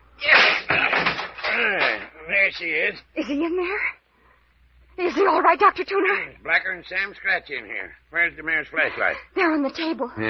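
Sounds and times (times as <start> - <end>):
heavy crashing impacts on a locked door being forced open: 0.3 - 2.1
speech: 2.5 - 4.0, 5.0 - 10.2.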